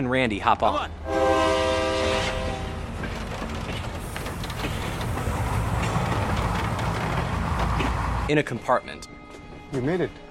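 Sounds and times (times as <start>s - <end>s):
speech: 0.0s - 1.4s, 8.3s - 10.2s
train rumbling along the rails: 0.8s - 8.4s.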